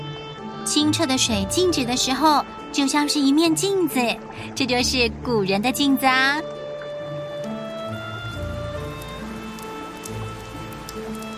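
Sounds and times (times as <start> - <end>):
speech: 0.7 - 6.6
rain falling on river water: 3.5 - 11.3.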